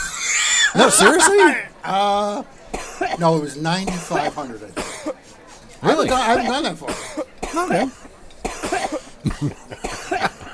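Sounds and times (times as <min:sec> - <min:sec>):
laughter: 0:00.0 - 0:10.5
speech: 0:00.7 - 0:05.2, 0:05.8 - 0:08.1, 0:09.3 - 0:09.8
person coughing: 0:03.9 - 0:05.2, 0:06.0 - 0:10.5.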